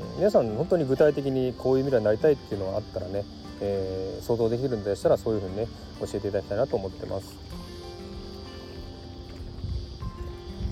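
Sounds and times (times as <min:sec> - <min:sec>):
cicadas droning: 0:00.0 - 0:10.7
speech: 0:00.2 - 0:07.6
gusty wind: 0:07.4 - 0:10.7.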